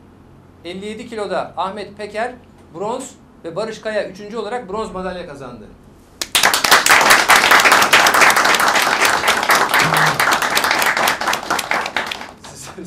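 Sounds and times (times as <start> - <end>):
speech: 0.6 - 5.8
crowd applauding medal-winning wrestlers: 6.2 - 12.8.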